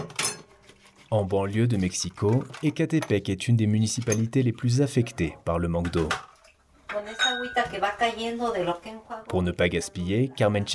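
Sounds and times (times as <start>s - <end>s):
dishes clinking as they are washed with recycled dishwater: 0.0s - 0.8s, 1.8s - 8.2s
speech: 1.1s - 6.3s, 7.4s - 10.7s.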